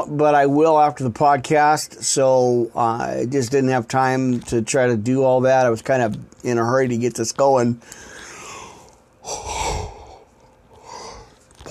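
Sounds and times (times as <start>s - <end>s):
speech: 0.0s - 8.1s
tired person yawning: 8.5s - 11.3s.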